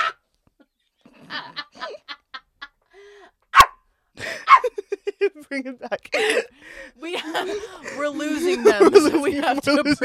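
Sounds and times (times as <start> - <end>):
laughter: 1.1 - 2.8, 4.2 - 5.6, 7.0 - 10.0
dog yipping and barking: 3.5 - 3.8, 4.5 - 4.7
speech: 5.5 - 10.0.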